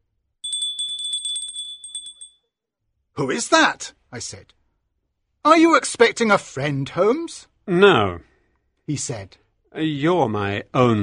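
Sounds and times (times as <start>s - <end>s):
doorbell ringing with a bright metallic trill: 0.4s - 2.4s
speech: 3.2s - 4.6s, 5.4s - 8.3s, 8.9s - 11.0s.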